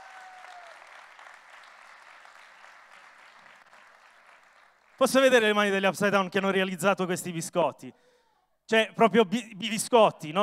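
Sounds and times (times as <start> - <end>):
audience applause: 0.0 - 5.0
speech: 5.0 - 8.1, 8.7 - 10.4.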